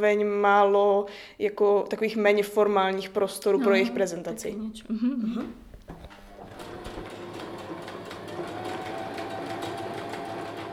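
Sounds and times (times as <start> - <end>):
speech: 0.0 - 6.0
faint room noise in a studio: 0.0 - 7.4
sewing machine stitching a plush handbag: 6.0 - 10.7.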